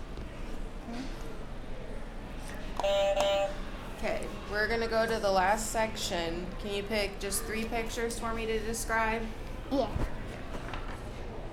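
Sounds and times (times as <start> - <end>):
low room noise: 0.0 - 11.5
steady electronic buzz from a pressed buzzer: 2.8 - 3.6
speech: 4.6 - 10.2.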